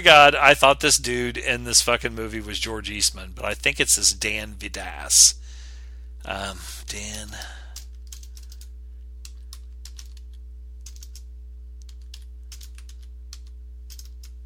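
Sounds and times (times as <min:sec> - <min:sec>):
speech: 0:00.0 - 0:05.4, 0:06.2 - 0:07.6
steady low electrical hum: 0:00.0 - 0:14.4
rapid typing on a computer keyboard: 0:07.8 - 0:14.4.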